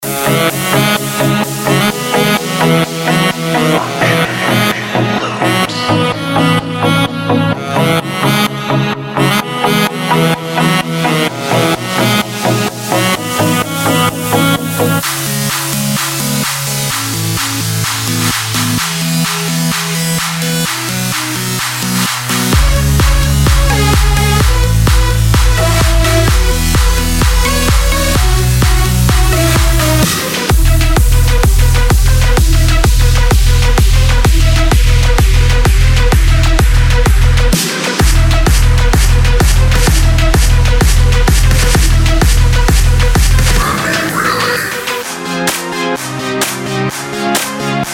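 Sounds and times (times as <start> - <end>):
electronic dance music: 0.0 - 47.9.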